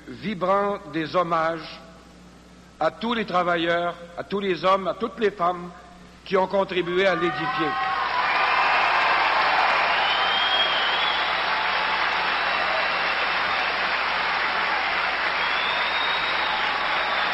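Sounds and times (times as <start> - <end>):
speech: 0.2 - 1.8, 2.8 - 7.9
scattered cheers and whoops: 7.3 - 17.3
large crowd of workers applauding: 7.8 - 17.3.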